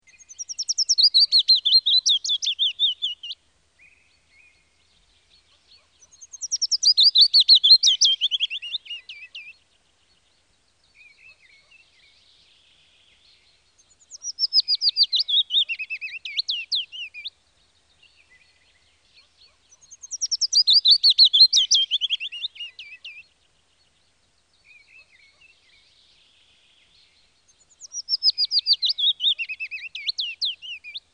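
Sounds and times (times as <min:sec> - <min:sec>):
willow warbler singing: 0:00.0 - 0:31.1.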